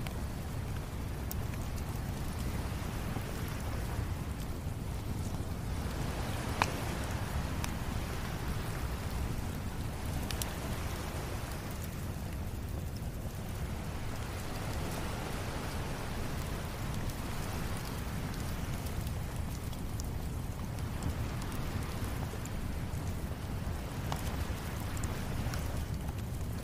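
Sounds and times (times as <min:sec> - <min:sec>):
crackling fire: 0:00.0 - 0:26.6
gentle waves crashing in the distance: 0:00.8 - 0:25.9.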